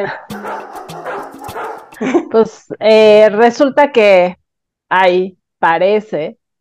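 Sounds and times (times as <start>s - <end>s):
speech: 0.0s - 0.5s, 2.0s - 6.4s
dog barking and yipping: 0.3s - 2.0s.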